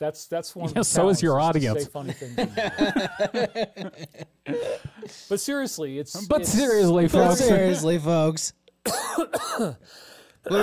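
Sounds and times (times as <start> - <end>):
speech: 0.0 - 10.6
laughter: 1.8 - 5.1
person making hacking cough-like bursts: 4.5 - 5.2, 8.8 - 9.8.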